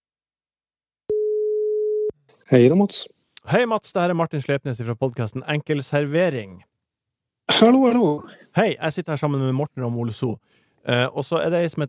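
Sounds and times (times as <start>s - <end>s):
telephone ringback tone while placing a call: 1.1s - 2.1s
speech: 2.5s - 6.7s, 7.5s - 11.8s.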